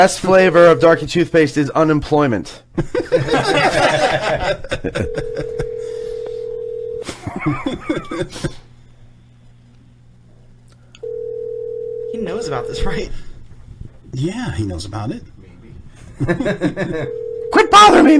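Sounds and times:
speech: 0.0 - 6.0, 7.3 - 8.7, 12.1 - 13.3, 14.1 - 15.3, 16.2 - 18.1
snicker of laughter: 2.8 - 6.0, 7.0 - 8.6, 16.2 - 17.2
telephone dial tone calling a mobile phone: 5.2 - 7.0, 11.0 - 12.7, 17.1 - 17.6
telephone dialing: 5.2 - 7.0, 11.0 - 12.2, 17.1 - 17.6.

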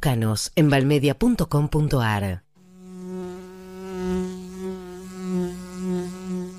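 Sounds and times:
speech: 0.0 - 2.4
bee buzzing: 2.6 - 6.5.

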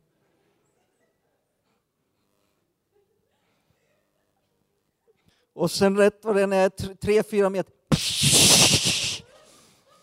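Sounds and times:
speech: 5.5 - 8.4
voice imitating high-pressure garden hose water spray: 7.9 - 9.2.

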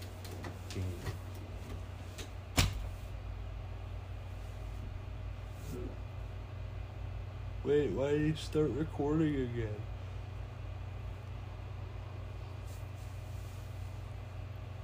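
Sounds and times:
steady low hum: 0.0 - 14.8
closet door shutting thump: 2.5 - 3.0
speech: 7.6 - 9.9.

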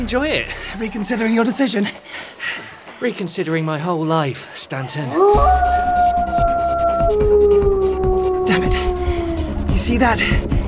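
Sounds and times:
speech: 0.0 - 6.0, 9.9 - 10.5
wolves howling: 5.0 - 10.0.

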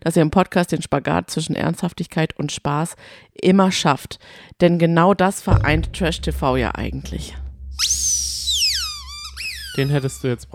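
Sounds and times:
speech: 0.0 - 8.0, 9.8 - 10.5
low hum: 5.5 - 10.5
squeaky toy ball being squeezed: 7.8 - 10.5.

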